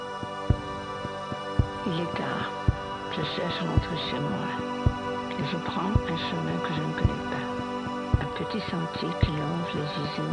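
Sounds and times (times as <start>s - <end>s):
sustained synth drone in an ambient electronic intro: 0.0s - 10.3s
soft evenly spaced low thumps: 0.4s - 7.5s, 8.1s - 8.4s
speech: 1.8s - 2.6s, 3.2s - 7.5s, 8.4s - 10.3s.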